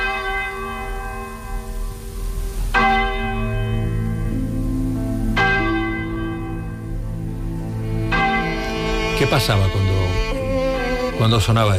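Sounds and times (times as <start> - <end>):
large church bells ringing: 0.0 - 11.7
speech: 9.3 - 9.8, 11.2 - 11.7.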